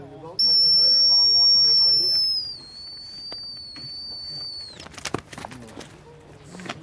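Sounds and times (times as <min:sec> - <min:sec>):
voices murmuring: 0:00.0 - 0:06.8
loud shrill dog whistle blown to recall a dog: 0:00.4 - 0:04.8.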